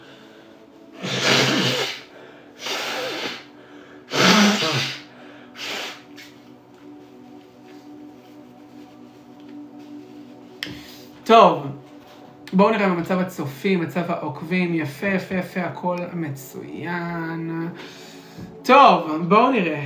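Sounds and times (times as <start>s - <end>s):
person blowing nose: 1.0s - 6.4s
quiet rustling: 6.4s - 11.2s
speech: 11.3s - 11.7s, 12.5s - 19.8s.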